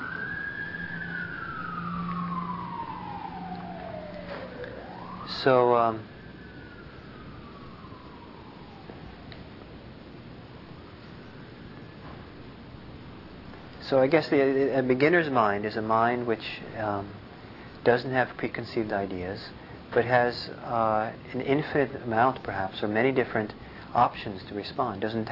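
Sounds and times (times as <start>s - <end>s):
emergency vehicle siren wailing as it passes: 0.0s - 13.0s
speech: 5.4s - 6.2s, 13.9s - 17.2s, 17.8s - 25.2s.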